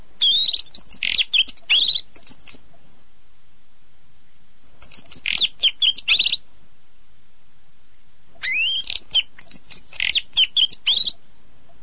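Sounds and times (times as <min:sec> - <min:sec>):
bird chirping and twittering: 0:00.2 - 0:02.7, 0:04.8 - 0:06.4, 0:08.4 - 0:11.2.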